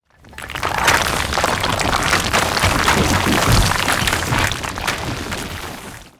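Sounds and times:
building crash: 0:01.0 - 0:05.4.

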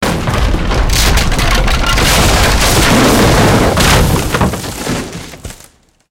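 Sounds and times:
wooden building collapsing: 0:00.0 - 0:06.0.

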